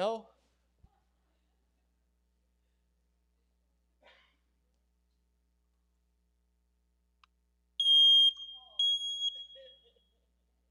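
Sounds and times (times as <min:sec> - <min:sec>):
speech: 0:00.0 - 0:00.3
smoke detector chirping: 0:07.8 - 0:09.8.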